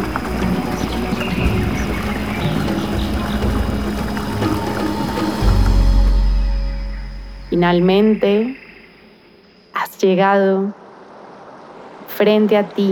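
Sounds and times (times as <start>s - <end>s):
river water rushing: 0.0s - 8.8s
deep low rumble: 0.0s - 9.0s
speech: 7.6s - 8.6s, 10.0s - 10.8s, 12.2s - 12.9s.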